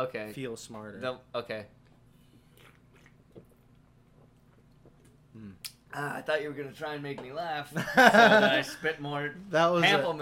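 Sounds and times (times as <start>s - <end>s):
speech: 0.0s - 1.8s, 5.4s - 10.2s
person gulping pamplemousse sparkling water: 2.5s - 5.8s
quiet mouth noises: 5.3s - 5.9s
laughter: 7.8s - 8.9s.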